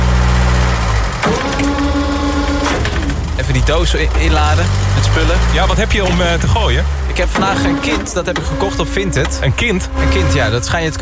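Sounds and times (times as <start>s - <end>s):
forklift engine starting and idling: 0.0s - 10.9s
speech: 3.7s - 10.9s.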